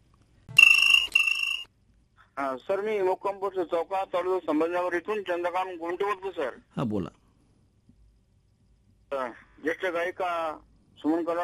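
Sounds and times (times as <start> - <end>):
electronic telephone ringing for an incoming call: 0.5 - 1.7
speech: 2.4 - 7.2, 9.1 - 11.4.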